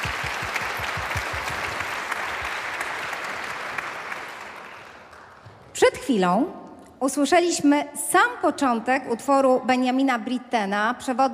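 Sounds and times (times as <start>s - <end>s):
large concert audience applauding the musicians: 0.0s - 5.6s
speech: 5.9s - 11.3s.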